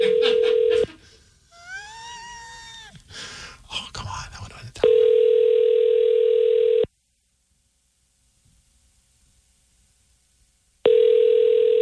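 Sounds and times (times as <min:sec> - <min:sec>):
steady electronic phone tone: 0:04.8 - 0:06.9, 0:10.9 - 0:11.8.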